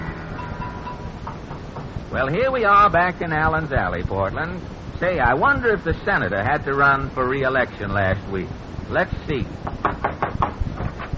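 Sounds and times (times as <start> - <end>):
speech: 2.1 - 9.9
knocking on a door: 9.6 - 11.0.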